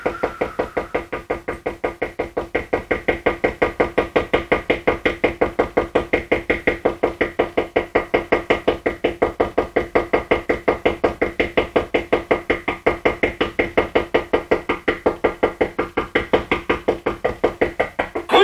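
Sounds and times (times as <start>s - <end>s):
rapid knocking on the wooden door of a small cottage: 0.2s - 18.3s.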